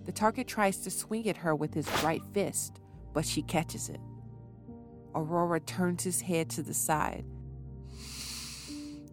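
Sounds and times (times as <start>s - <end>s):
speech: 0.1s - 4.1s, 5.2s - 7.4s
person sniffing at a man's face and neck: 8.0s - 9.0s.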